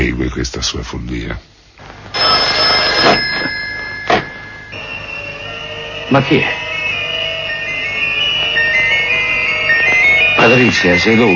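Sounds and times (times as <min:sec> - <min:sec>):
speech: 0:00.1 - 0:01.6, 0:06.1 - 0:06.6, 0:10.4 - 0:11.3
telephone ringing with a trilling bell tone: 0:02.1 - 0:11.3.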